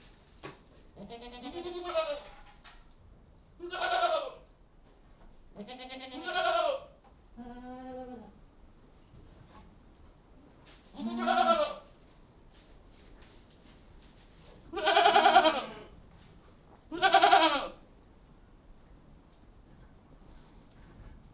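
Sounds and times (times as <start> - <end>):
goats bleating with quavering nasal cries in a goat house: 1.0 - 2.2, 3.6 - 4.4, 5.6 - 8.3, 10.9 - 11.8, 14.7 - 15.9, 16.9 - 17.8.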